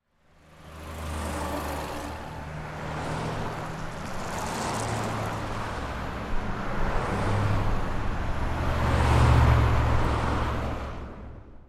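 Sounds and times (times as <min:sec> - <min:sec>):
street and highway traffic: 0:00.0 - 0:11.6.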